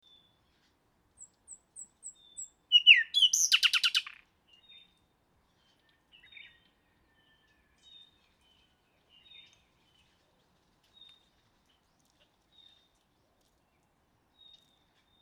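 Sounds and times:
common nightingale Luscinia megarhynchos singing: 0:01.2 - 0:04.8.

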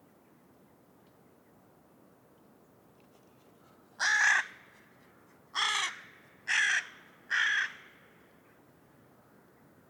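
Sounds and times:
carrion crow Corvus corone giving harsh hoarse caws: 0:04.0 - 0:04.6, 0:05.6 - 0:08.0.

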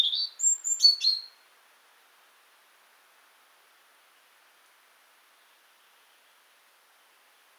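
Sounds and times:
European robin singing a brief silvery phrase: 0:00.0 - 0:01.4.

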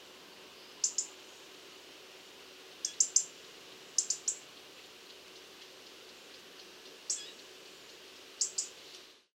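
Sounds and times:
faint steady background noise: 0:00.0 - 0:09.3
European robin Erithacus rubecula ticking call notes: 0:00.6 - 0:01.2, 0:02.6 - 0:09.1.

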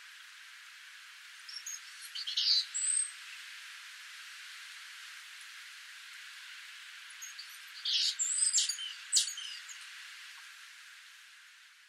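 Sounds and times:
soft hiss of background noise: 0:00.0 - 0:11.8
Parus major great tit calling: 0:07.8 - 0:09.8.

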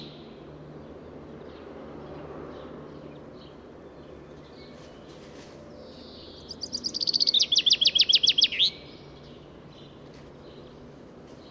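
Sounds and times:
common chaffinch Fringilla coelebs singing: 0:00.0 - 0:01.7, 0:03.1 - 0:11.4.

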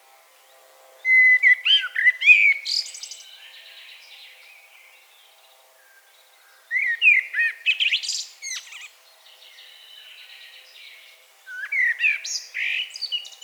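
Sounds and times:
common blackbird Turdus merula singing: 0:01.0 - 0:04.4, 0:06.6 - 0:13.4.

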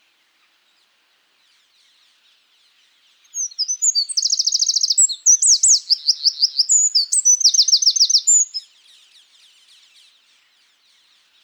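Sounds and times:
Eurasian wren singing, Troglodytes troglodytes: 0:03.4 - 0:08.7.

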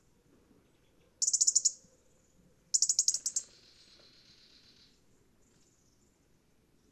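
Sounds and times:
soft low background noise: 0:00.0 - 0:06.8
European robin Erithacus rubecula sharp high ticking calls: 0:01.2 - 0:01.8, 0:02.7 - 0:05.0.

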